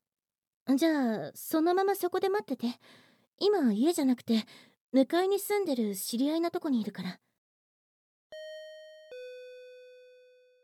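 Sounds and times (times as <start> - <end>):
speech: 0.7 - 7.3
doorbell chime two-note ding-dong: 8.3 - 10.6.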